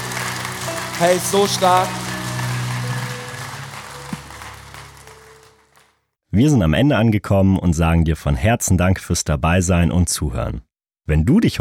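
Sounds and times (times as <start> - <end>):
low musical drone: 0.0 - 5.8
crowd applause: 0.0 - 6.0
speech: 1.0 - 2.0, 6.4 - 11.5.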